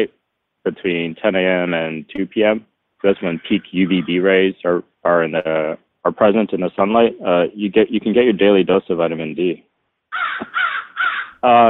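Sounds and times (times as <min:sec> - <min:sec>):
speech: 0:00.0 - 0:10.7, 0:11.4 - 0:11.6
crows calling outdoors: 0:03.0 - 0:04.3, 0:10.1 - 0:11.5.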